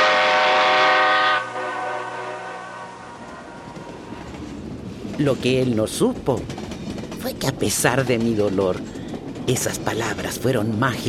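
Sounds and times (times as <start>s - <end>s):
departing train horn blast: 0.0s - 4.2s
speech: 5.2s - 11.0s.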